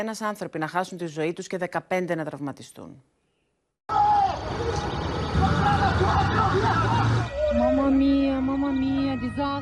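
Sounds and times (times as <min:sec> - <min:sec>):
speech: 0:00.0 - 0:03.2, 0:07.6 - 0:09.6
crowd of agitated voices at an accident scene: 0:03.9 - 0:09.6
traffic rumble: 0:03.9 - 0:09.6.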